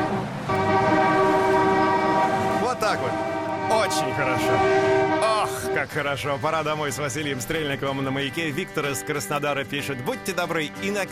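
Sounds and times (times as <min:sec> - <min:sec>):
car horn blast sounded by a driver: 0:00.0 - 0:06.0
speech: 0:05.8 - 0:11.1.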